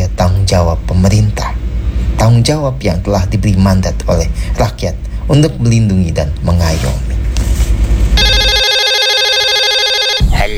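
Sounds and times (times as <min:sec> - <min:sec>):
low rumble: 0:00.0 - 0:06.4
speech: 0:00.5 - 0:01.6, 0:02.2 - 0:07.1
telephone ringing with a bright electronic ringtone: 0:08.2 - 0:10.4.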